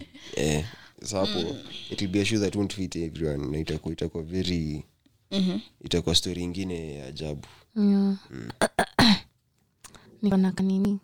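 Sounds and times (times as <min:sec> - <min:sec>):
speech: 0:00.4 - 0:08.7, 0:10.2 - 0:11.0
person clearing throat: 0:08.4 - 0:09.3.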